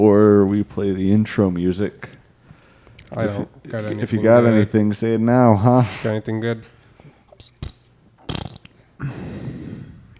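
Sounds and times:
speech: 0.0s - 2.2s, 3.1s - 6.7s
loud sputtering fart: 7.4s - 8.8s.

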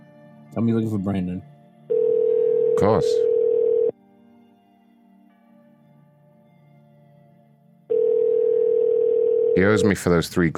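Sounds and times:
speech: 0.5s - 1.5s, 2.8s - 3.3s, 9.6s - 10.5s
telephone ringing tone: 1.9s - 4.0s, 7.9s - 9.8s.

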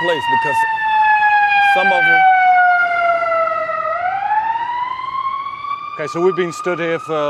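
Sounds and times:
speech: 0.0s - 0.8s, 1.8s - 2.4s, 6.0s - 7.2s
faint low rumble of traffic: 0.0s - 7.2s
wailing siren of passing police cars and an ambulance: 0.0s - 7.2s.

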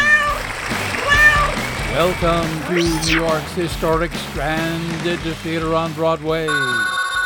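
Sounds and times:
cat meowing: 0.0s - 1.6s, 2.7s - 3.3s
speech: 2.0s - 7.0s.

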